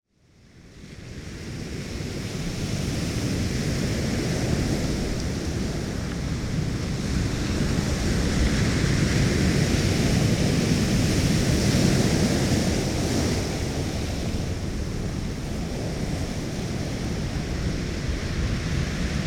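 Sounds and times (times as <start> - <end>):
North Sea waves on Overstrand Beach in Norfolk UK: 0.3 - 19.2.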